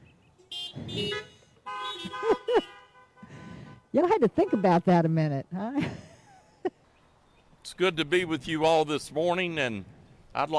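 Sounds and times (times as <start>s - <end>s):
several car horns honking: 0.0s - 5.0s
speech: 3.9s - 6.0s, 7.7s - 10.5s.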